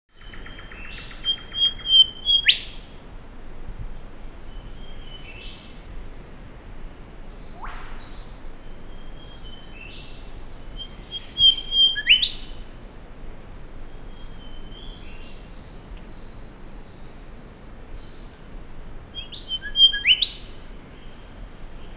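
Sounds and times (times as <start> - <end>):
Pachycephala pectoralis golden whistler calling: 0.4 - 2.8, 10.7 - 12.7, 19.2 - 21.9.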